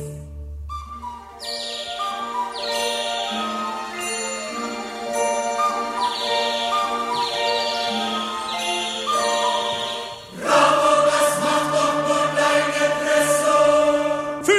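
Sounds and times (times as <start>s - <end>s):
several trained birds whistling and chirping: 0.7s - 4.5s, 5.2s - 10.3s
steady high tones: 1.0s - 14.4s.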